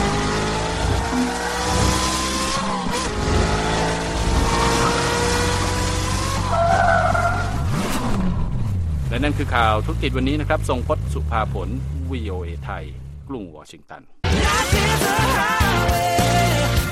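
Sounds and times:
1,400 horsepower supercar engine roaring and revving: 0:00.0 - 0:13.2
tires screeching and skidding: 0:00.0 - 0:13.2
speech: 0:09.2 - 0:16.1.

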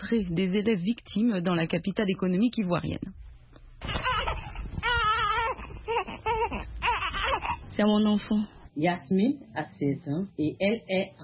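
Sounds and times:
speech: 0:00.0 - 0:03.2, 0:07.8 - 0:11.2
two-week-old newborn crying in strained high wails: 0:03.8 - 0:07.7.

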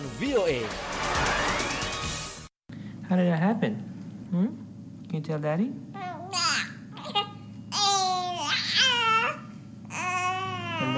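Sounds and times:
speech: 0:00.2 - 0:01.2, 0:03.1 - 0:06.0
baby babbling: 0:06.0 - 0:10.9.

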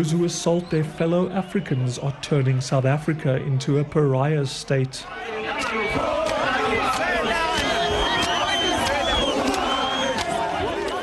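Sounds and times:
speech: 0:00.0 - 0:07.1
large crowd of men chanting and singing in a park in South Africa: 0:00.0 - 0:11.0
men shouting: 0:05.1 - 0:11.0.

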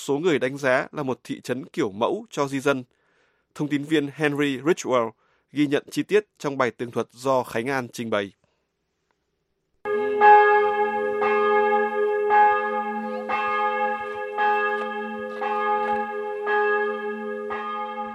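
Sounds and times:
speech: 0:00.0 - 0:03.0, 0:03.6 - 0:08.4
church bells of a 14th-century church ringing: 0:09.9 - 0:18.1.

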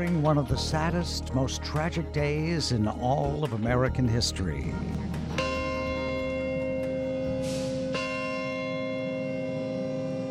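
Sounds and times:
speech: 0:00.0 - 0:05.5
large bell tolling at the World Trade Center memorial ceremony: 0:04.9 - 0:10.2.

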